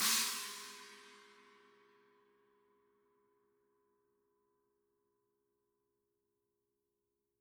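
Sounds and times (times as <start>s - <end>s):
china cymbal: 0.0s - 1.8s.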